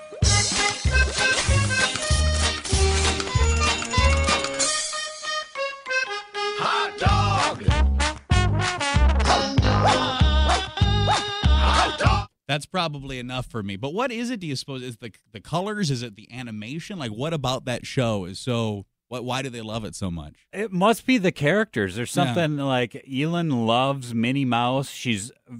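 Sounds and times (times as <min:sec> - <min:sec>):
bouncy upbeat cartoon dance song with thumping beat and bright melody: 0:00.0 - 0:12.3, 0:22.2 - 0:22.5
speech: 0:12.6 - 0:25.5.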